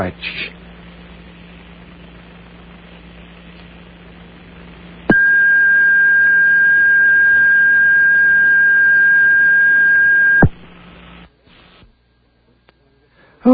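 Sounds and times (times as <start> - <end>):
speech: 0.0 - 0.6
low hum: 0.0 - 13.5
long steady electronic answering machine beep: 5.1 - 10.5.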